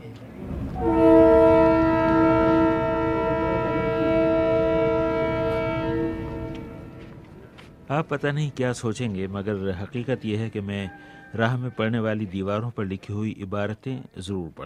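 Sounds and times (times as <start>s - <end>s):
moving passenger train rumbling: 0.0s - 12.4s
passenger train horn blowing: 0.5s - 7.6s
speech: 8.0s - 14.6s.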